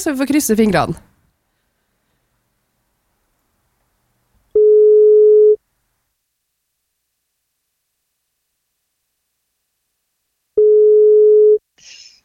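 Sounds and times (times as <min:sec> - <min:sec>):
speech: 0:00.0 - 0:01.1
telephone ringback tones on an outgoing call: 0:04.6 - 0:05.6, 0:10.6 - 0:11.6.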